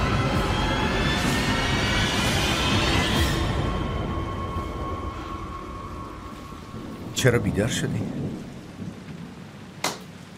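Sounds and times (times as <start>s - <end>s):
rain falling outside at night: 0.0s - 10.3s
speech: 7.2s - 8.5s
sharp crack: 9.8s - 10.2s.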